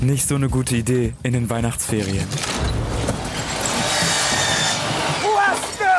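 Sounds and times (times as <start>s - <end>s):
speech: 0.0s - 2.7s
sawing wood during studio rebuilding: 3.1s - 5.9s.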